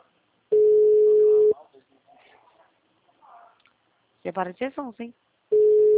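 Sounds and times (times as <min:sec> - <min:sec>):
telephone ringback tone while placing a call: 0:00.5 - 0:01.5, 0:05.5 - 0:05.9
speech: 0:04.2 - 0:05.3.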